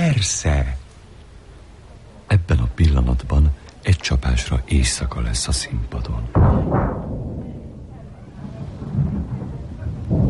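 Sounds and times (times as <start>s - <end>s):
speech: 0.1s - 0.7s, 2.4s - 7.2s
deep thunder rumbling in a storm: 6.3s - 10.2s.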